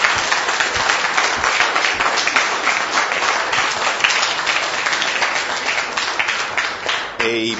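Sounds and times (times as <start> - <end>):
large audience applause: 0.0 - 7.5
speech: 7.3 - 7.5.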